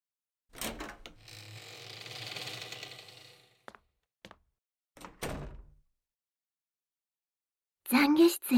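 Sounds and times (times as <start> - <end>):
door opening with a long grinding creak: 0.5 - 3.8, 5.0 - 5.8
door shutting with heavy thuds and a rattling clunk: 5.0 - 5.8
speech: 7.9 - 8.5.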